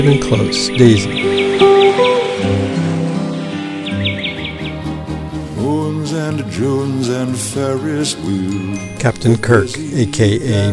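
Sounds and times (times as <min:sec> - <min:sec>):
speech: 0:00.0 - 0:02.1, 0:06.4 - 0:10.7
birds chirping: 0:00.0 - 0:05.3, 0:08.8 - 0:10.7
sustained mellow instrumental music with low droning tones: 0:00.0 - 0:10.7.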